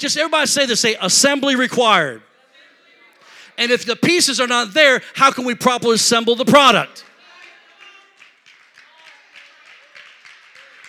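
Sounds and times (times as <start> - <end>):
speech: 0.0 - 2.3, 3.6 - 7.1
sizable audience clapping steadily: 7.0 - 10.8.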